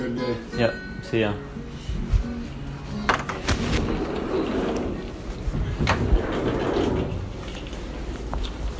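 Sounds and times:
speech: 0:00.2 - 0:01.6
sharp knocks and clunks: 0:03.1 - 0:07.8
door opening as someone walks out: 0:03.1 - 0:08.7.

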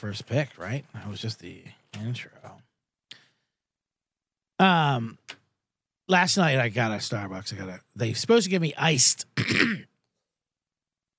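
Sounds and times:
speech: 0:00.0 - 0:02.6, 0:04.6 - 0:05.3, 0:06.1 - 0:09.9
throat-clearing cough: 0:09.4 - 0:10.0.

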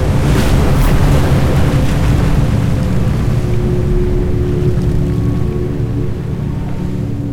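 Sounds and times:
loud roar of rushing water: 0:00.0 - 0:07.3
ocean surf: 0:00.0 - 0:07.3.

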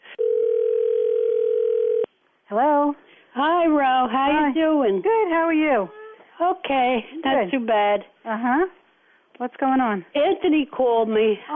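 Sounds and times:
telephone dial tone: 0:00.2 - 0:02.1
speech: 0:02.5 - 0:08.8, 0:09.4 - 0:11.5.

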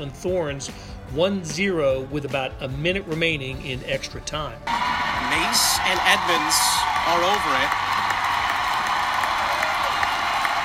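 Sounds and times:
speech: 0:00.0 - 0:07.9
large stadium crowd cheering at a football match: 0:04.7 - 0:10.6.

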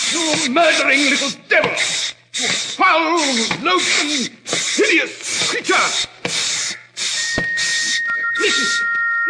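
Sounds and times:
breathy hissing: 0:00.0 - 0:09.0
speech: 0:00.1 - 0:06.4, 0:08.4 - 0:09.0
low thin whistle as a signal: 0:07.0 - 0:09.2.

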